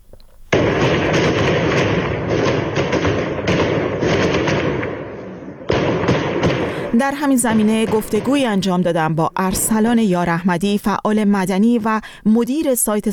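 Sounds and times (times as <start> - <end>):
gunfire from security forces shooting at protesters in Sanandaj Iran: 0.5 - 9.8
speech: 7.0 - 13.1.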